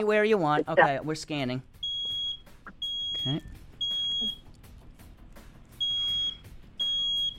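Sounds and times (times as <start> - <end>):
speech: 0.0 - 1.7, 3.2 - 3.5
carbon monoxide alarm beeping: 1.8 - 4.4, 5.8 - 7.3.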